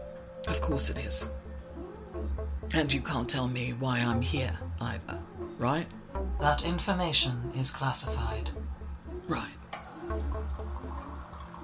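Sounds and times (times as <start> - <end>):
speech: 0.5 - 1.4, 2.7 - 8.6, 9.3 - 9.6
water dispensing from a wall unit in a low-pitched stream: 9.8 - 11.6.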